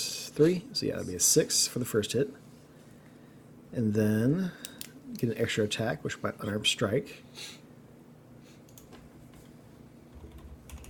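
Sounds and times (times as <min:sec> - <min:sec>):
speech: 0:00.4 - 0:02.5, 0:03.7 - 0:07.6
typing on a computer keyboard during a tabletop role-playing game session: 0:10.1 - 0:10.8.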